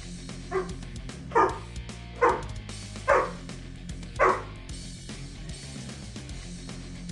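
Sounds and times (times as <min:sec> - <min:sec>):
dog barking: 0:00.5 - 0:03.5, 0:04.2 - 0:04.6.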